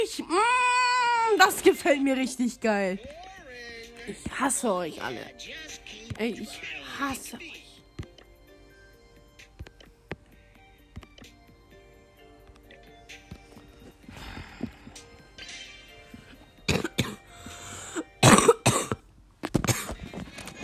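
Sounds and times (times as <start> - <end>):
speech: 0.1 - 3.2, 4.1 - 7.5
ill person coughing: 16.7 - 19.1, 19.6 - 20.1.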